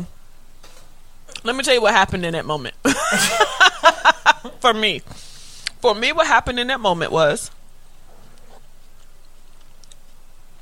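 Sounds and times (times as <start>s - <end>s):
low hum: 0.0s - 10.6s
speech: 1.4s - 5.2s, 5.8s - 7.6s
chewing: 8.0s - 10.6s.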